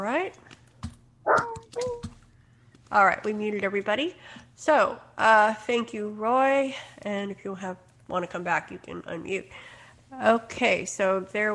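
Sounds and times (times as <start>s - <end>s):
speech: 0.0s - 0.6s, 2.9s - 11.5s
dog barking with sharp whiny yelps: 1.3s - 2.0s.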